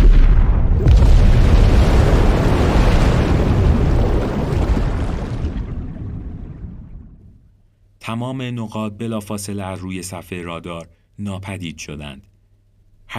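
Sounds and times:
massive explosion over the sea: 0:00.0 - 0:07.4
speech: 0:08.1 - 0:12.3.

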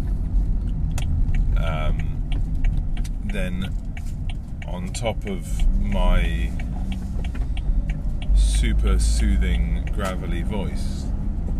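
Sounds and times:
car road rumble in the cabin on a daily commute: 0:00.0 - 0:11.5
speech: 0:03.3 - 0:03.9, 0:04.7 - 0:06.7, 0:08.6 - 0:11.0.

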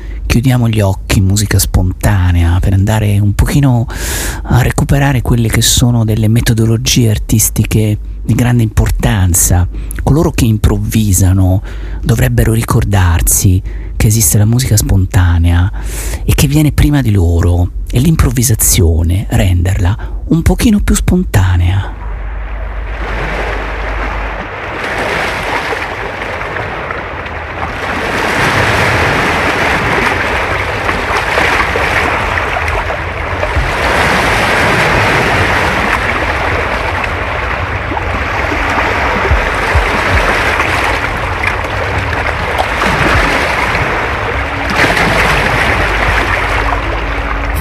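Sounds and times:
speech: 0:00.4 - 0:22.0
sea waves with surf hiss: 0:21.9 - 0:47.6.

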